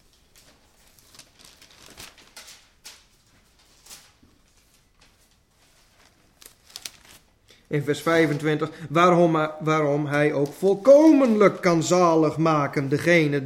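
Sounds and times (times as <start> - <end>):
book pages turning: 0.1 - 7.4, 10.0 - 12.0
speech: 7.7 - 13.4.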